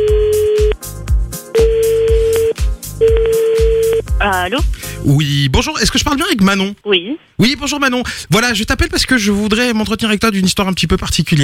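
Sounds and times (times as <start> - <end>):
telephone ringing tone as a call is placed: 0.0 - 0.7, 1.6 - 4.0
speech: 4.3 - 11.4.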